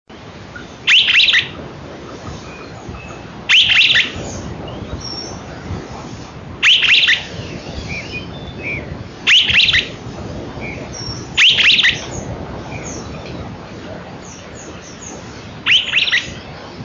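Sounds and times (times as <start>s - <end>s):
steady hissing background: 0.1s - 16.8s
streaked flycatcher Myiodynastes maculatus giving sharp high squeaky calls: 0.9s - 1.5s, 2.5s - 5.4s, 6.6s - 10.0s, 10.7s - 13.0s, 14.6s - 16.4s.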